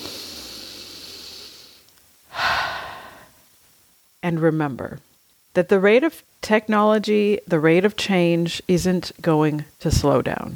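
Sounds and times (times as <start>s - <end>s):
deep breath: 0.0s - 3.4s
soft hiss: 0.0s - 10.5s
speech: 4.2s - 10.5s.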